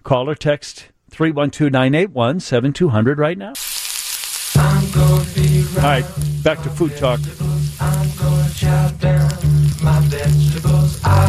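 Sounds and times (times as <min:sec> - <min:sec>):
speech: 0:00.1 - 0:03.7, 0:04.9 - 0:07.5
food sizzling in frying: 0:03.6 - 0:11.2.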